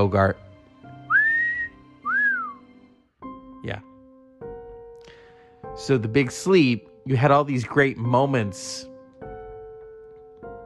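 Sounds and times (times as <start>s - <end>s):
speech: 0.0s - 0.4s, 3.6s - 3.9s, 5.8s - 8.9s
person whistling two clear notes: 1.1s - 2.7s.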